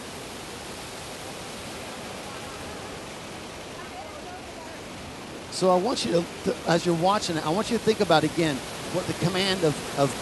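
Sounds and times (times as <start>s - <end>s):
river in flood rushing: 0.0s - 10.2s
speech: 5.6s - 10.2s.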